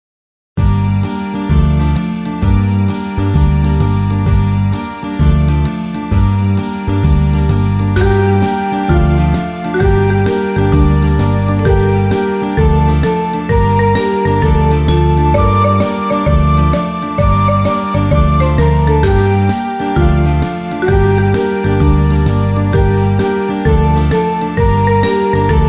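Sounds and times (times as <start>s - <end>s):
ukulele in G-C-E-A tuning playing: 1.1s - 25.6s.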